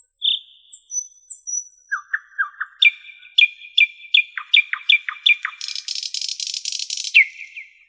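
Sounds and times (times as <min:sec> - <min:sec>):
nightingale singing: 0:00.0 - 0:07.8.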